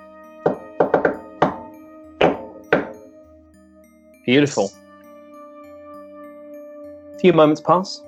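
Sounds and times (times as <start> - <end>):
heavy booming knocks on a door in a rhythmic pattern: 0.5 - 3.1
speech: 4.3 - 4.8, 7.2 - 8.0.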